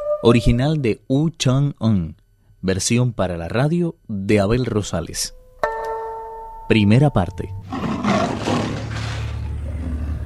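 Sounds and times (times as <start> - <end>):
speech: 0.2 - 5.4, 6.7 - 7.9
tiger roaring: 7.6 - 10.2.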